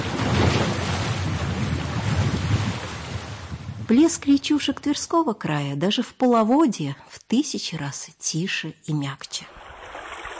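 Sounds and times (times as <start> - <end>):
sea waves crashing against a stone embankment in Sevastopol: 0.0 - 3.6
wind buffeting the microphone: 0.0 - 4.4
speech: 3.9 - 9.6.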